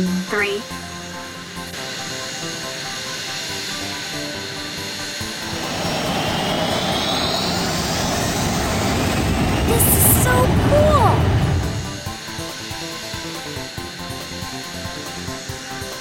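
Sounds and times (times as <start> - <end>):
speech: 0.0 - 0.9
jet engine roaring: 1.3 - 12.5.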